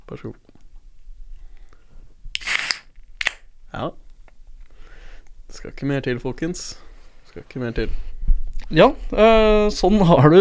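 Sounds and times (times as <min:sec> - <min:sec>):
speech: 0:00.1 - 0:00.6, 0:03.7 - 0:04.0, 0:05.5 - 0:08.1, 0:08.7 - 0:10.4
gas hissing from a fresh Munkholm beer bottle being opened: 0:02.4 - 0:02.9.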